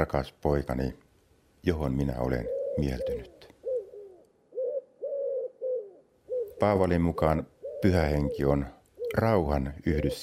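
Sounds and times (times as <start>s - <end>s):
speech: 0.0s - 1.0s, 1.6s - 3.4s, 6.6s - 10.2s
dove cooing: 2.2s - 10.2s.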